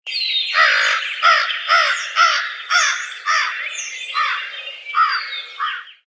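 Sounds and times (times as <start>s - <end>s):
American crow: 0.5s - 6.1s.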